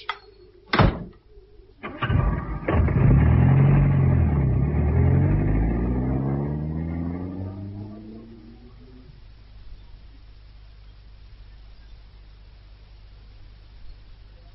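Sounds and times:
car door slamming shut: 0.7 - 1.2
sharp clunks: 0.7 - 1.2
car engine revving as the car pulls away: 1.8 - 9.2.

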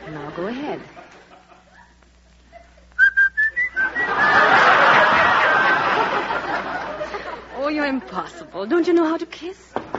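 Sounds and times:
laughter: 0.0 - 3.0, 3.6 - 8.1
speech: 0.1 - 1.1, 7.9 - 9.9
person whistling through pursed lips: 3.0 - 4.1.

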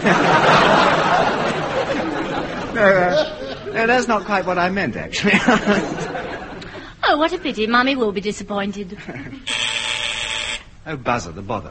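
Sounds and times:
speech: 0.0 - 0.4, 2.8 - 6.4, 7.1 - 9.6, 10.8 - 11.6
laughter: 0.0 - 7.0, 8.9 - 9.7
harsh electric buzzer: 9.4 - 10.8.

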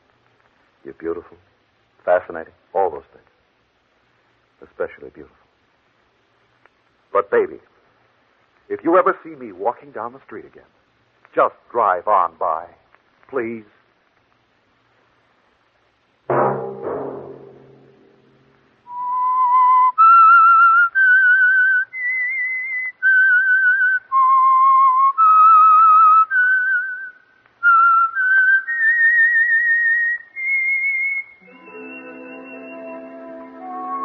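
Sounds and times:
speech: 0.8 - 3.3, 4.6 - 5.4, 7.1 - 7.7, 8.7 - 10.8, 11.4 - 13.8
brief low thump: 16.3 - 18.8
lone whistler whistling a slow theme melody: 18.9 - 34.0
soft orchestral chord: 31.4 - 34.0.

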